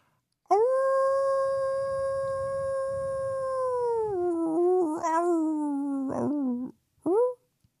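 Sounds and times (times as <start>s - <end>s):
person howling like a wolf: 0.5s - 6.7s.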